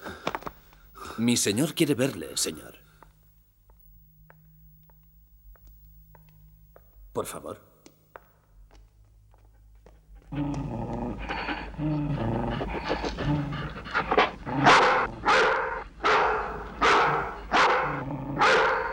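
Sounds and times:
speech: 1.2s - 2.9s, 7.2s - 7.7s, 11.8s - 14.8s
dog panting and rough canine breathing: 9.8s - 17.5s
dogs barking: 11.3s - 18.9s.

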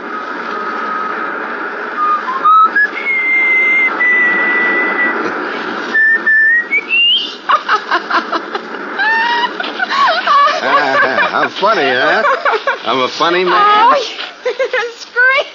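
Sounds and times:
steady noisy background: 0.0s - 15.5s
person whistling a tune: 2.0s - 5.1s, 5.9s - 7.3s
laughter: 7.2s - 15.5s
speech: 12.8s - 14.1s.

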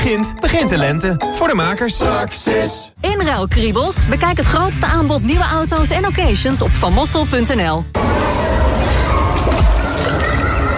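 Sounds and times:
speech: 0.1s - 8.5s
sloshing and churning water: 8.0s - 10.7s.

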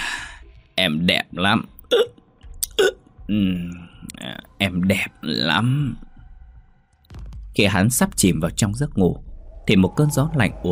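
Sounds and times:
speech: 0.8s - 2.2s, 2.8s - 6.0s, 7.6s - 10.7s
voice imitating a drunk man hiccupping: 1.9s - 3.1s.

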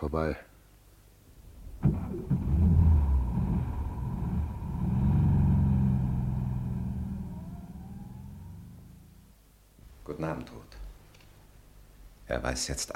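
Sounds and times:
speech: 0.0s - 0.5s, 12.3s - 12.9s
car driving with steady low engine rumble: 1.4s - 9.4s.

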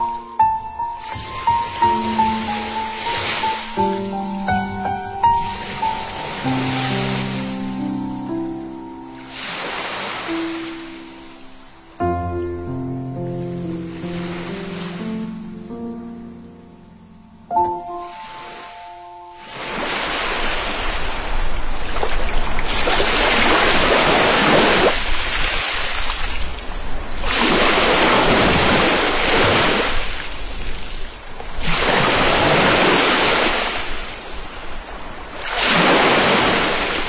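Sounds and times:
melodic music track with clear sustained notes: 0.0s - 9.4s, 10.3s - 19.4s
ocean waves stirred by a light breeze: 0.0s - 16.5s, 17.8s - 37.0s.

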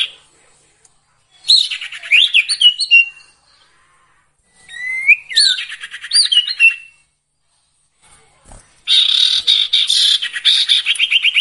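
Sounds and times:
sirtu song with whistles and buzzy trill: 1.4s - 3.8s, 4.6s - 7.2s, 8.8s - 11.4s.

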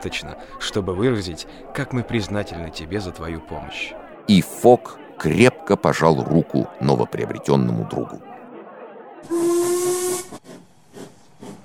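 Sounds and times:
speech: 0.0s - 8.3s
steam locomotive whistle as train departs: 9.2s - 10.4s
steam locomotive venting hissing steam: 9.3s - 11.6s.

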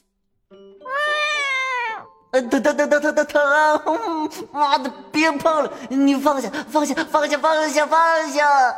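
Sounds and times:
white cat yowling at a pet hospital: 0.8s - 2.2s
speech: 2.4s - 8.7s.

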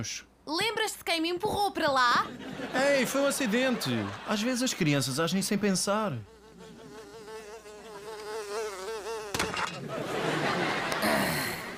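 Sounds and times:
speech: 0.0s - 6.4s
laughter: 2.2s - 5.0s, 6.5s - 7.2s, 9.6s - 11.7s
housefly buzzing: 5.8s - 9.8s.

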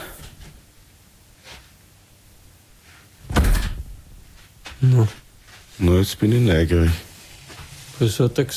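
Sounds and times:
door being closed at a doctor's practice: 3.2s - 4.3s
speech: 5.9s - 7.1s, 8.0s - 8.5s.

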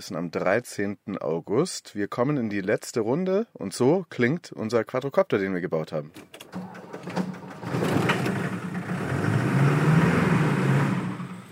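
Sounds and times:
speech: 0.0s - 6.8s
road noise: 6.4s - 11.4s
motorhome engine humming while driving: 6.5s - 11.4s.

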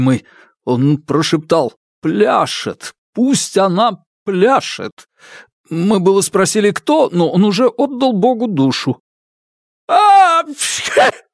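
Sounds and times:
speech: 0.0s - 9.0s, 9.9s - 11.3s
person imitating a loud sneeze: 10.6s - 11.3s.

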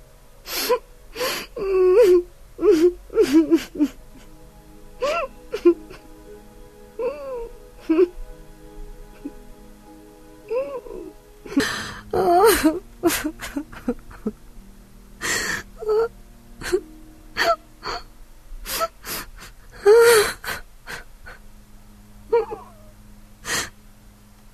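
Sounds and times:
woman crying mournfully at home: 0.5s - 4.4s, 5.0s - 6.2s, 7.0s - 8.2s, 10.5s - 14.4s, 15.2s - 18.0s, 18.7s - 21.4s, 22.3s - 22.8s.

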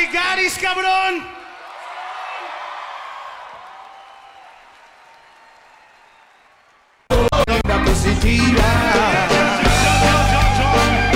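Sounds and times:
speech: 0.0s - 1.4s
crowd noise at a live nighttime show: 0.8s - 11.1s
applause at a live nighttime show: 1.4s - 7.1s.

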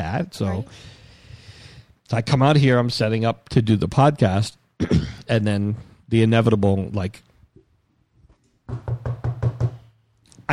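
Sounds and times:
speech: 0.1s - 1.0s, 2.1s - 7.3s
firm knocking on a door: 8.7s - 9.8s.

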